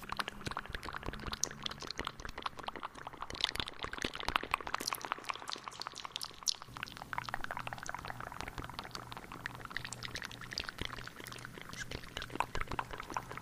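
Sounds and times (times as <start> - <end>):
faint low hum: 0.0 - 13.4
wet mouth sounds crackling and clicking: 0.0 - 13.4.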